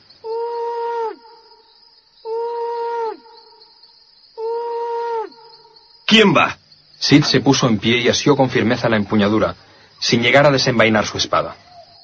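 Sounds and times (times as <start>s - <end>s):
faint chirring night background: 0.0s - 12.0s
owl hooting: 0.2s - 1.6s, 2.2s - 3.7s, 4.4s - 5.8s, 11.4s - 12.0s
speech: 6.1s - 11.6s.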